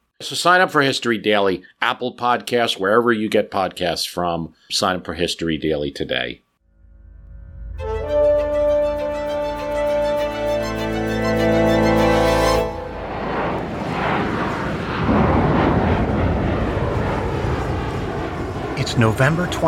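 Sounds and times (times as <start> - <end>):
speech: 0.2 - 6.4, 19.0 - 19.6
passenger plane engine droning: 6.8 - 19.6
turbulent roar of wind and rain in a storm over Washington State: 13.0 - 19.6.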